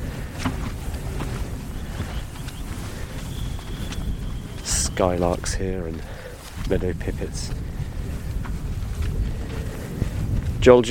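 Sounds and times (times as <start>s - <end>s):
wind blowing across an open slope buffeting the microphone: 0.0s - 10.8s
thin high whistle: 1.9s - 5.6s
speech: 5.0s - 7.7s, 10.6s - 10.8s.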